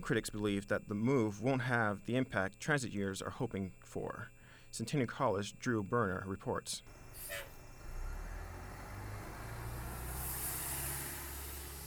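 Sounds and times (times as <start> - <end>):
speech: 0.0 - 7.5
city buses rumbling past with low engine drone: 6.9 - 11.8
city bus air-brake hiss: 7.1 - 7.6, 9.8 - 11.8.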